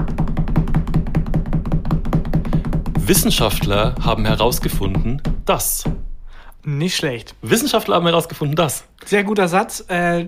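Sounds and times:
rapid dull knocking: 0.0 - 6.2
speech: 3.1 - 6.0, 6.6 - 10.2.

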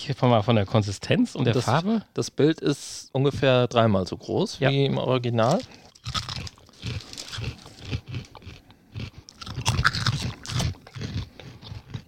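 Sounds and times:
speech: 0.0 - 7.1
chewing surimi: 5.4 - 12.0.

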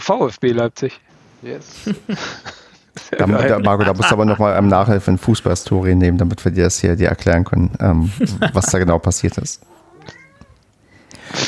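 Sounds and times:
speech: 0.0 - 10.2, 11.3 - 11.4
laughter: 1.7 - 5.9, 8.0 - 9.0
cat meowing: 9.7 - 10.7.

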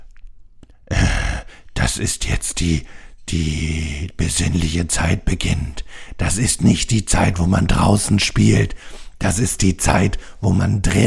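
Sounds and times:
person imitating a heavy exasperated breath: 0.7 - 1.8, 2.8 - 3.2, 5.8 - 6.2, 8.7 - 9.2
speech: 1.9 - 11.0.

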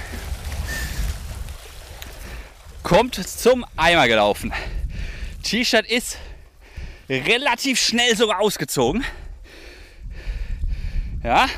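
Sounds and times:
splashes of someone swimming through water: 0.0 - 4.2
speech: 2.8 - 4.8, 5.4 - 6.3, 7.1 - 9.2, 11.2 - 11.5.

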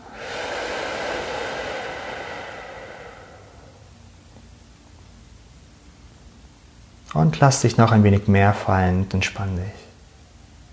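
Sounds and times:
slow breathy exhale during a guided relaxation breathing exercise: 0.0 - 4.2
speech: 7.1 - 9.8.

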